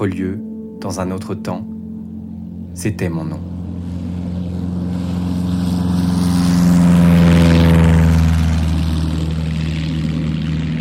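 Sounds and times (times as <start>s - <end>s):
speech: 0.0s - 1.7s, 2.8s - 3.5s
propeller airplane droning overhead: 0.0s - 10.7s.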